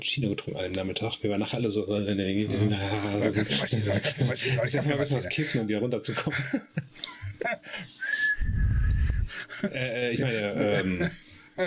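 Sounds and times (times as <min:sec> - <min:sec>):
speech: 0:00.0 - 0:08.6, 0:09.3 - 0:11.6
laughter: 0:02.5 - 0:07.9, 0:09.3 - 0:11.6
steady whistle tone blown on a whistle lollipop: 0:08.0 - 0:09.3.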